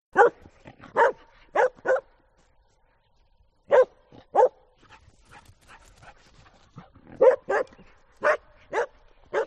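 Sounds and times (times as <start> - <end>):
dog barking: 0.1 - 2.1, 3.7 - 4.7, 7.1 - 9.4.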